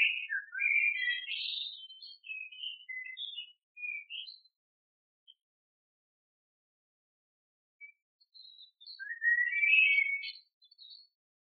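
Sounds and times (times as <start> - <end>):
bird chirps and whistles: 0.0 - 4.5, 7.8 - 11.0.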